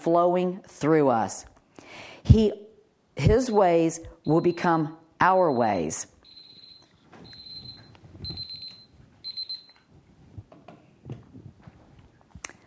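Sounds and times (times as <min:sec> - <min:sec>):
speech: 0:00.0 - 0:02.6, 0:03.2 - 0:06.1
faint room noise: 0:00.0 - 0:12.6
alarm clock ringing in high-pitched electronic beep bursts: 0:03.4 - 0:09.8.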